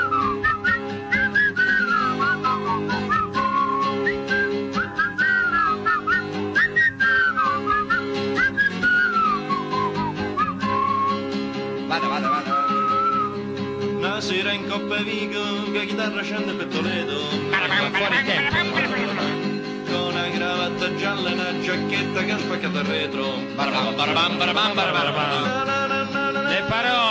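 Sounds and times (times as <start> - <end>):
person whistling a lively wandering tune: 0.0 - 11.3, 11.9 - 13.4
steady instrumental accompaniment: 0.0 - 26.6
speech: 14.8 - 18.6, 20.8 - 25.7
laughter: 17.3 - 19.6.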